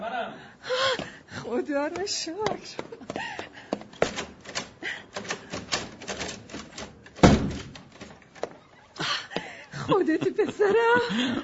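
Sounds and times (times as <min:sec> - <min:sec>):
speech: 0:01.5 - 0:03.4, 0:10.0 - 0:11.4
many door locks being unlocked: 0:04.0 - 0:08.4
laughter: 0:09.0 - 0:11.4.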